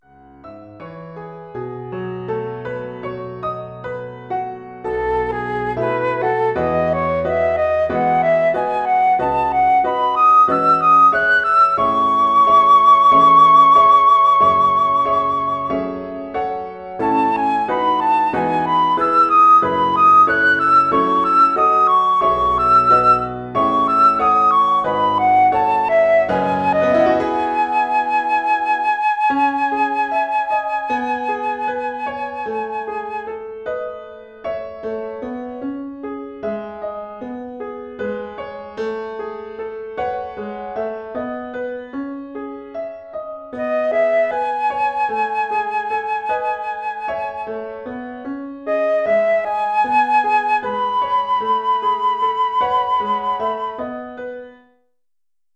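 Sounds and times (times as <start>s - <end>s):
flute solo over PA: 4.8s - 34.2s, 43.5s - 54.6s.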